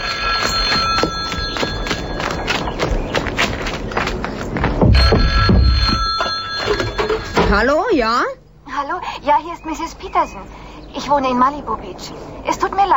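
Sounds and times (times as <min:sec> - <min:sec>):
telephone ringing with a bright bell tone: 0:00.0 - 0:02.9, 0:04.9 - 0:07.8
busy clattering background: 0:00.0 - 0:07.8
heavy thump: 0:04.6 - 0:06.2
speech: 0:07.5 - 0:12.9.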